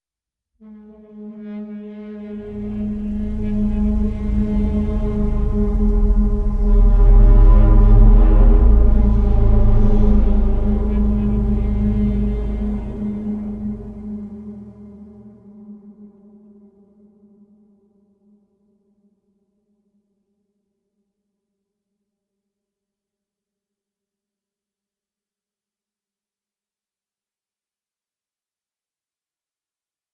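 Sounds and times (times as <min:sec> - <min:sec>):
cinematic braaam: 0:00.6 - 0:15.6
eerie metallic horns with tonal swells: 0:00.6 - 0:16.2.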